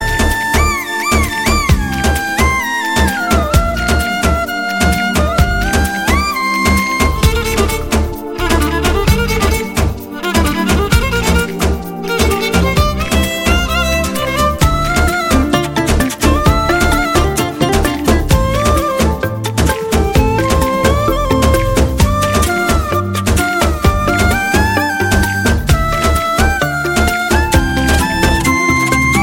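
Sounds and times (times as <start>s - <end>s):
Telugu romantic background music: 0.0s - 29.2s.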